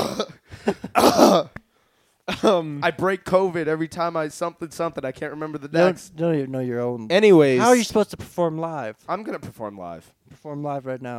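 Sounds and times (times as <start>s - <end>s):
person coughing harshly: 0.0s - 1.6s
speech: 0.2s - 1.6s, 2.3s - 11.1s.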